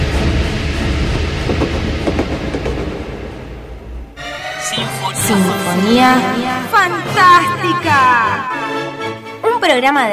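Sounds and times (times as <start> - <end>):
train rolling along rails: 0.0 - 4.4
speech: 5.3 - 8.7, 9.6 - 10.1.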